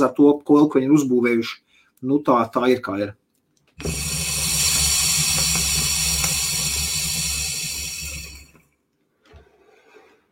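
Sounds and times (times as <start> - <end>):
speech: 0.0 - 3.2, 3.8 - 4.0
electronic water pipe bubbling gurgle during a drag: 3.8 - 8.6.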